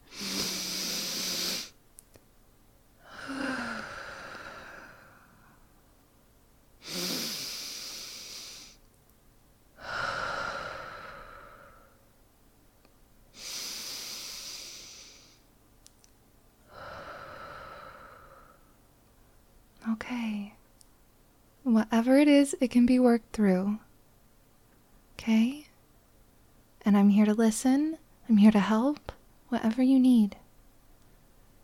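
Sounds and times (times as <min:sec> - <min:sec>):
slow deep breathing: 0:03.0 - 0:05.7, 0:06.8 - 0:08.8, 0:09.8 - 0:12.0, 0:13.4 - 0:15.5, 0:16.7 - 0:18.8
speech: 0:21.8 - 0:23.8, 0:25.2 - 0:25.6, 0:26.9 - 0:30.4.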